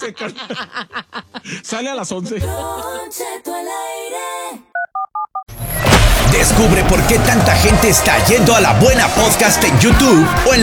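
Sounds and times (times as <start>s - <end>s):
laughter: 0.0s - 1.6s
speech: 0.0s - 4.6s, 6.3s - 10.6s
touch-tone telephone keypad beeps while dialing a number: 4.8s - 5.5s
burst of noise: 5.5s - 9.3s.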